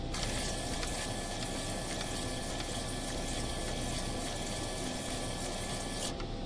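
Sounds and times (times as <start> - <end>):
PC04 paper tape reader running: 0.1 - 6.3.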